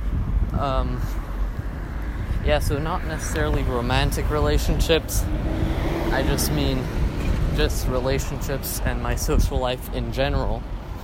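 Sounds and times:
car traffic rumble: 0.0s - 11.0s
speech: 0.6s - 1.3s, 2.4s - 7.0s, 7.6s - 10.8s.

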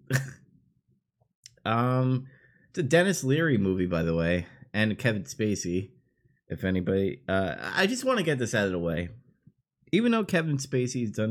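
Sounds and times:
person coughing: 0.0s - 0.5s
speech: 1.6s - 9.2s, 9.9s - 11.3s.

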